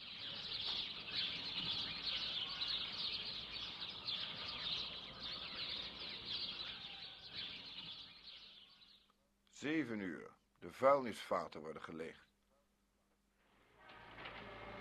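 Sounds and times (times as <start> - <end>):
dense chorus of birds singing and chirping: 0.0 - 9.1
speech: 9.6 - 12.3.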